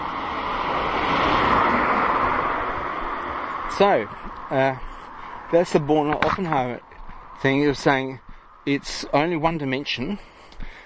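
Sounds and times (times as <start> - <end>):
car rushing past: 0.0 - 4.0
speech: 3.8 - 4.9, 5.5 - 6.8, 7.4 - 10.3.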